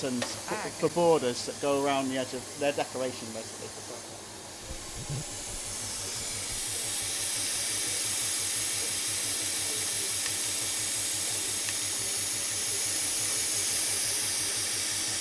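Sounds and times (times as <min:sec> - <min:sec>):
speech: 0:00.0 - 0:04.0
compressed air hissing from a monotype printing machine: 0:00.4 - 0:15.2
monotype printing machine casting border patterns with low mechanical pulsing: 0:04.6 - 0:07.2.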